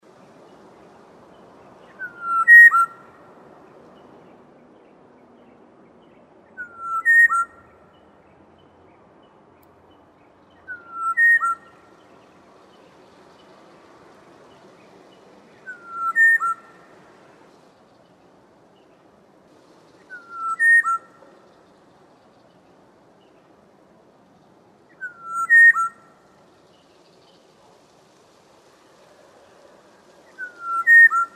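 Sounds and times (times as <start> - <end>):
black-naped oriole calling: 1.7 - 3.4, 6.6 - 7.8, 10.6 - 12.1, 15.5 - 17.5, 20.0 - 21.8, 24.9 - 26.4, 29.3 - 31.3.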